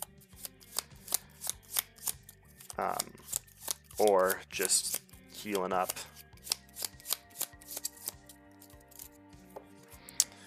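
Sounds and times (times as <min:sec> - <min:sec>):
deck of cards being shuffled during a tabletop card game: 0:00.0 - 0:10.4
speech: 0:02.8 - 0:03.2, 0:04.0 - 0:06.0.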